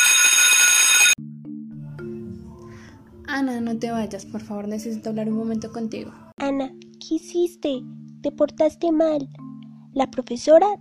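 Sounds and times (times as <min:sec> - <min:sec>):
loud harsh school dismissal bell ringing: 0:00.0 - 0:01.2
speech: 0:03.3 - 0:09.4, 0:10.0 - 0:10.7.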